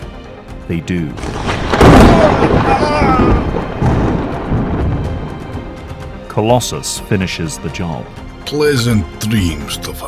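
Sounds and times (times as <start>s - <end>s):
speech: 0.7s - 3.8s, 6.4s - 10.0s
booming rumble of lightning strike: 1.2s - 6.0s
sizzling electric lightning-bolt strike: 1.2s - 6.1s.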